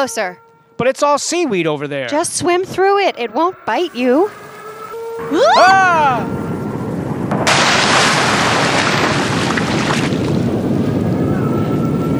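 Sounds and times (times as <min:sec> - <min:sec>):
speech: 0:00.0 - 0:04.5, 0:05.2 - 0:06.4
roaring gust of wind over open water: 0:03.8 - 0:12.1.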